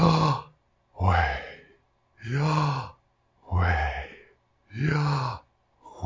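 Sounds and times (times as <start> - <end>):
slow heavy human breathing in and out: 1.0 - 2.9, 3.5 - 5.4.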